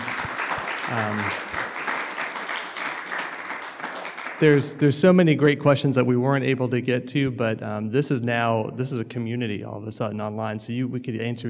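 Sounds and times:
audience applause for a panel: 0:00.0 - 0:04.8
speech: 0:00.9 - 0:01.7, 0:04.4 - 0:11.4.

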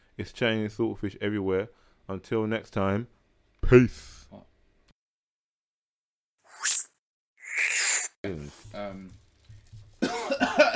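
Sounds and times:
speech: 0:00.2 - 0:04.5
person coughing: 0:10.0 - 0:10.7.

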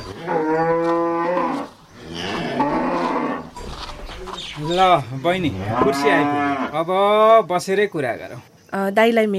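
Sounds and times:
cows mooing on a cattle farm: 0:00.0 - 0:03.8, 0:05.4 - 0:07.3
speech: 0:04.6 - 0:09.3.

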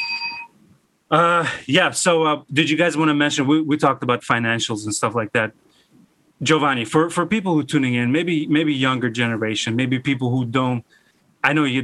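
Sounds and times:
bell ringing: 0:00.0 - 0:00.6
speech: 0:01.1 - 0:05.7, 0:06.4 - 0:11.8.

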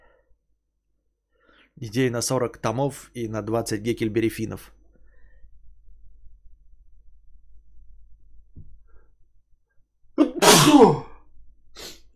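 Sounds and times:
speech: 0:01.8 - 0:04.8
person sneezing: 0:10.2 - 0:11.2
faint sniff: 0:11.7 - 0:12.1.

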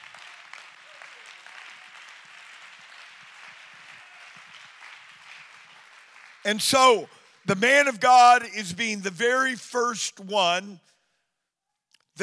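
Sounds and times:
audience clapping hands: 0:00.0 - 0:08.5
speech: 0:06.4 - 0:10.9.

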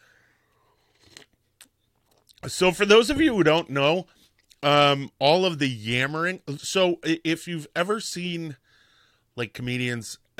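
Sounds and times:
coffee slurp: 0:00.8 - 0:01.4
speech: 0:02.4 - 0:08.6, 0:09.4 - 0:10.2.

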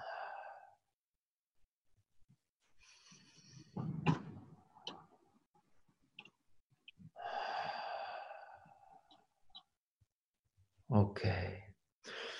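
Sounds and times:
slow deep belly breathing in and out during a relaxation exercise: 0:00.0 - 0:00.9, 0:02.7 - 0:03.8, 0:07.1 - 0:09.3, 0:12.0 - 0:12.3
speech: 0:11.0 - 0:11.6.

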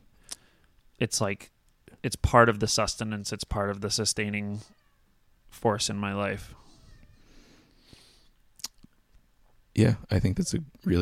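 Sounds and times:
speech: 0:01.0 - 0:04.8, 0:05.5 - 0:06.6, 0:09.8 - 0:10.9
house cat meowing faintly while running across a couch: 0:04.5 - 0:05.2, 0:06.5 - 0:07.6.

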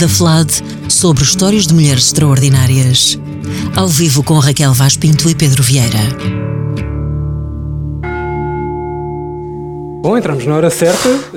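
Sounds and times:
speech: 0:00.0 - 0:06.9, 0:10.0 - 0:11.3
resonant metallic gong-like chime struck: 0:08.0 - 0:11.1.

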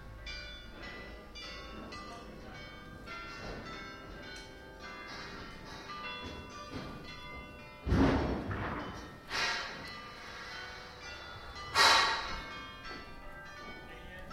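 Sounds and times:
ringing metallic tones from scaffold building: 0:00.0 - 0:14.3
metal scaffold poles clanking at a church in The Hague: 0:03.2 - 0:13.2.

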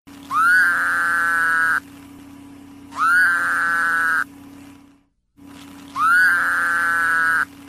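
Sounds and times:
steady low hum of noise: 0:00.1 - 0:07.6
Woodhouse's toad nasal buzzing bleats: 0:00.3 - 0:01.8, 0:02.9 - 0:04.3, 0:05.9 - 0:07.5.

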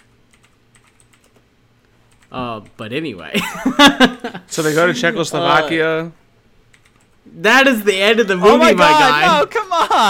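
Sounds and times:
typing on a computer keyboard: 0:00.0 - 0:01.4, 0:02.1 - 0:02.8, 0:06.7 - 0:07.2
speech: 0:02.3 - 0:06.2, 0:07.4 - 0:10.0.

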